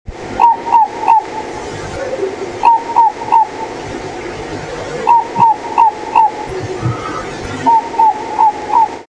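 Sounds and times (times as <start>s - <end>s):
Ninox natalis: 0.4s - 1.4s, 2.0s - 3.6s, 5.0s - 9.0s.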